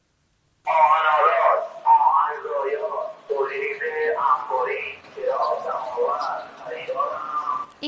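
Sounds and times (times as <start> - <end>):
second-hand dealer street-vendor call through a van loudspeaker: 0.7 - 7.8.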